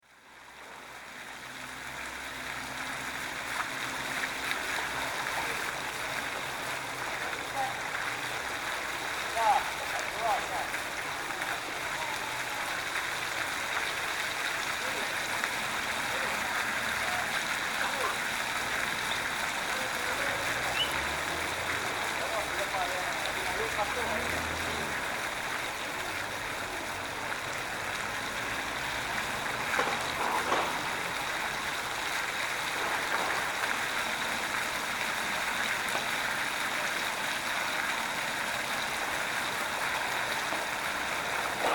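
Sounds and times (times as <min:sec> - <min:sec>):
water fountain on Paseo Sarmiento in Mendoza: 0:00.0 - 0:41.7.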